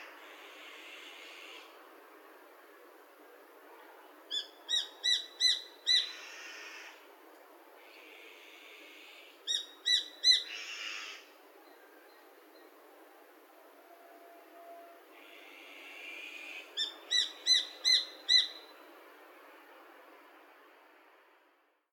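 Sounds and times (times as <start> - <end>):
Japanese sparrowhawk calling in Saitama: 4.3 - 6.2, 9.5 - 10.9, 16.7 - 18.7.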